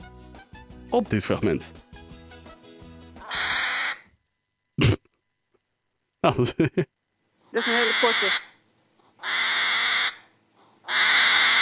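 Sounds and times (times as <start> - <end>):
speech: 0.9 - 1.8, 6.3 - 7.0, 7.6 - 8.5
agitated hedgehog rhythmic throaty pulsing calls: 3.2 - 4.1, 7.6 - 8.6, 9.2 - 11.6
laughter: 6.2 - 6.9.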